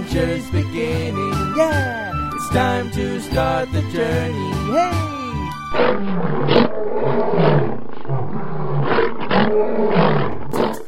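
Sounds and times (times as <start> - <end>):
speech: 0.1 - 1.8, 2.5 - 7.6
several large beasts roaring and growling: 5.7 - 10.8.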